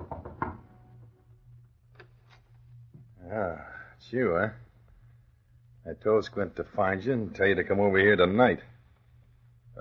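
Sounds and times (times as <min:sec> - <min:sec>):
knocking on the wooden door of a small apartment: 0:00.0 - 0:00.6
low steady hum: 0:00.0 - 0:09.7
speech: 0:03.3 - 0:04.6, 0:05.8 - 0:08.7.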